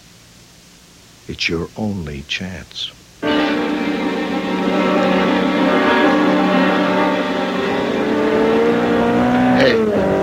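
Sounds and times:
speech: 0:01.3 - 0:03.6
sports car speeding past at high speed: 0:03.2 - 0:10.2.

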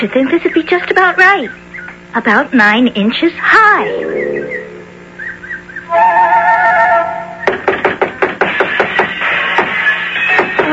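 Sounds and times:
speech: 0:00.0 - 0:04.6
steady busy din: 0:03.4 - 0:05.2
warbling whistle-like tones: 0:03.8 - 0:07.5
knocking on a small house's door: 0:07.4 - 0:09.8.

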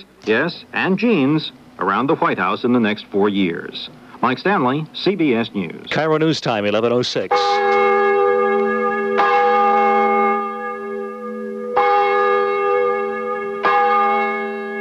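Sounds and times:
speech: 0:00.0 - 0:07.9
single large church bell tolling: 0:07.3 - 0:14.7.

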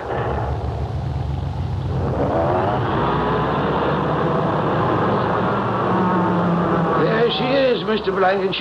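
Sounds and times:
car engine revving while backing out of a garage: 0:00.0 - 0:08.5.

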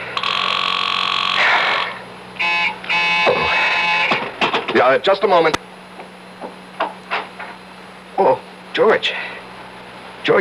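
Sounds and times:
telephone ringing with electronic trill, unanswered: 0:00.2 - 0:01.4, 0:02.4 - 0:04.2
speech: 0:04.8 - 0:05.7, 0:08.2 - 0:09.2.

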